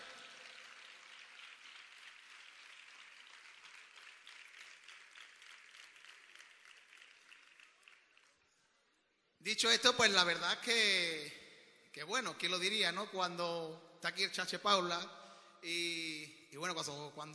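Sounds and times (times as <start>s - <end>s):
audience applause at a festival: 0.0s - 8.4s
speech: 9.5s - 11.4s, 12.0s - 17.3s.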